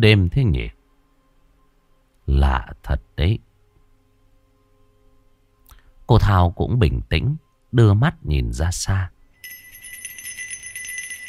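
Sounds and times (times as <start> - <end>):
speech: 0.0 - 0.8, 2.3 - 3.5, 6.1 - 9.1
bells ringing at night in a Catholic parish village: 9.4 - 11.2.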